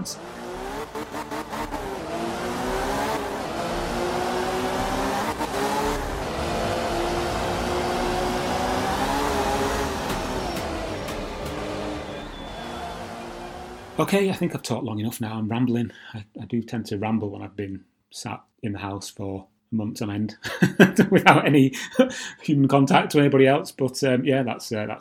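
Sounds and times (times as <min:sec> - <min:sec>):
speech: 0:00.0 - 0:00.3, 0:01.0 - 0:02.2, 0:14.0 - 0:24.9
rally car engine revving in a video game: 0:00.0 - 0:14.5
laughter: 0:20.4 - 0:22.4.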